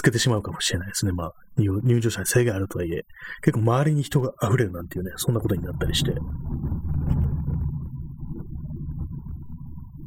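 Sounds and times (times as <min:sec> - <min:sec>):
speech: 0:00.0 - 0:06.6
deep loud rumble: 0:04.9 - 0:10.0.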